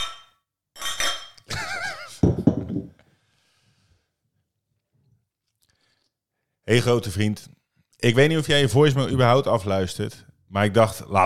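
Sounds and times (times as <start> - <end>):
glasses clinking together in a toast: 0.0 - 2.9
speech: 6.7 - 11.2.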